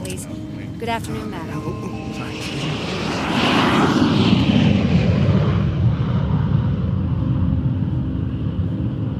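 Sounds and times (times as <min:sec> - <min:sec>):
airplane engine drone in the cabin during flight: 0:00.0 - 0:09.1
speech: 0:00.1 - 0:03.2.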